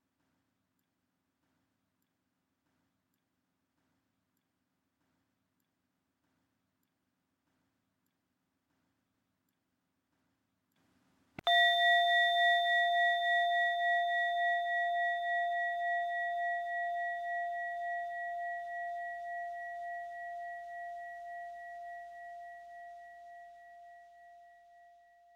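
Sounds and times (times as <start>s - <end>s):
meditation bell ringing: 11.4s - 19.6s.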